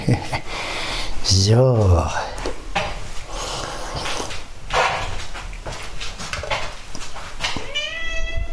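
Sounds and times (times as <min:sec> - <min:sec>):
speech: 0:01.3 - 0:02.3
rustling and bumping noises: 0:04.1 - 0:07.8
cat meowing: 0:07.6 - 0:08.5.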